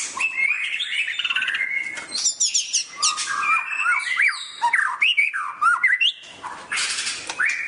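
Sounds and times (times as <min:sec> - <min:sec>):
oriental magpie-robin singing varied whistled phrases and scratchy notes: 0:00.0 - 0:07.6.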